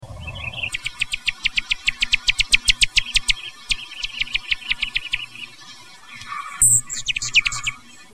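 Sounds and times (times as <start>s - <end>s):
Allen's hummingbird nocturnal flight call: 0.0s - 8.1s.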